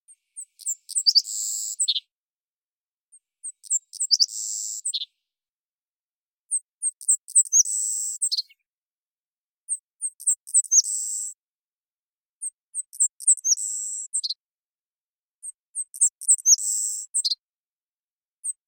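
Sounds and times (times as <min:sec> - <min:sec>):
Savannah sparrow Passerculus sandwichensis singing chips, stutter and buzz: 0:00.1 - 0:02.1, 0:03.1 - 0:05.3, 0:06.5 - 0:08.7, 0:09.7 - 0:11.4, 0:12.4 - 0:14.4, 0:15.4 - 0:17.4, 0:18.4 - 0:18.6.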